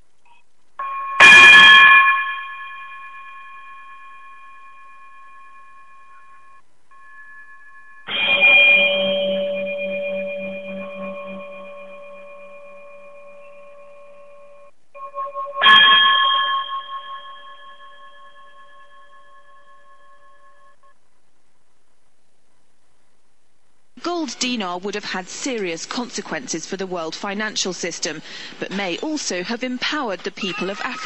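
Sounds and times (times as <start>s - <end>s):
closing chime bell: 0.8s - 20.9s
speech: 24.3s - 31.0s.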